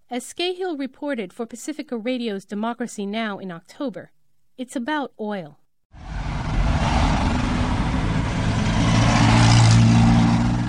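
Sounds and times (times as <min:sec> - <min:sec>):
speech: 0:00.1 - 0:06.2
congested city street traffic of old cars with engines idling and revving: 0:06.0 - 0:10.6.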